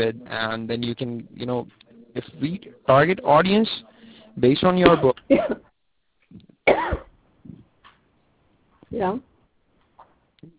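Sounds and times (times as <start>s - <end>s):
speech: 0.0s - 5.7s, 8.9s - 9.3s
person coughing: 5.0s - 5.7s, 6.7s - 7.6s.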